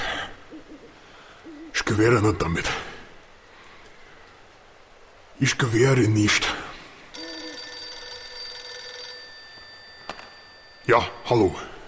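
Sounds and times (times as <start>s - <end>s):
speech: 1.9s - 2.9s, 5.4s - 6.6s, 10.9s - 11.7s
telephone ringing with an electronic trill: 7.2s - 11.2s.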